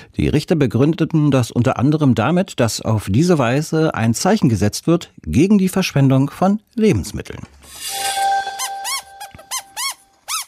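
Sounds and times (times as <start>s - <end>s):
speech: 0.2s - 8.2s
rubber duck squeaking: 9.5s - 10.4s.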